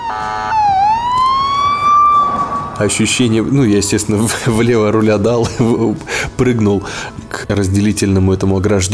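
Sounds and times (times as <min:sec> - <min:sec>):
short buzzing horn blast: 0:00.0 - 0:00.7
ambulance siren wailing: 0:00.0 - 0:04.0
low traffic rumble: 0:00.0 - 0:06.1
speech: 0:00.1 - 0:00.6, 0:02.8 - 0:08.9
laughter: 0:04.2 - 0:06.1.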